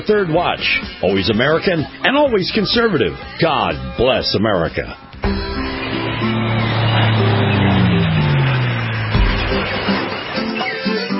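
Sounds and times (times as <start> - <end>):
speech: 0.0 - 5.5
musical intro for a radio beach and boating forecast: 0.1 - 10.6
steady rumbling bed resembling a motorboat engine: 5.2 - 10.3
sliding descending pitch: 5.2 - 10.8.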